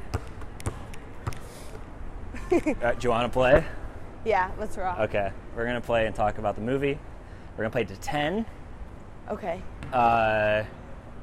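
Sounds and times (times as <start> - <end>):
basketball dribbled in practice on a court: 0.0 - 1.4
steady noise: 0.0 - 11.2
speech: 2.5 - 8.6, 9.3 - 10.8.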